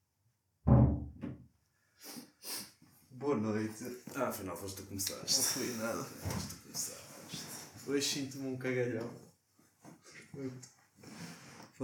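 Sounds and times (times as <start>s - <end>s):
door closing with a solid resonant thud: 0.6s - 1.4s
speech: 3.2s - 7.1s, 7.9s - 9.2s, 10.4s - 10.7s.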